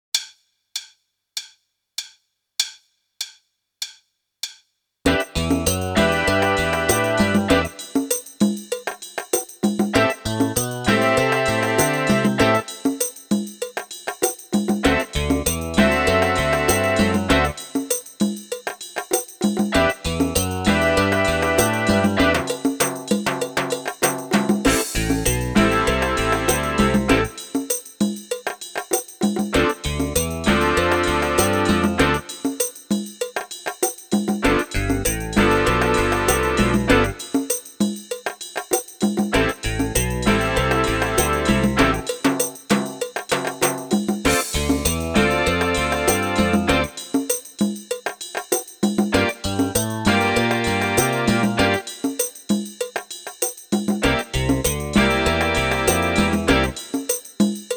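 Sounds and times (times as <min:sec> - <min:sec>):
bass drum: 0:05.1 - 0:07.8, 0:09.9 - 0:12.7, 0:14.8 - 0:17.6, 0:19.7 - 0:23.6, 0:24.4 - 0:27.4, 0:29.5 - 0:32.3, 0:34.4 - 0:37.2, 0:39.3 - 0:42.1, 0:44.2 - 0:47.0, 0:49.1 - 0:51.9, 0:54.0 - 0:56.8
snare drum: 0:05.1 - 0:57.7.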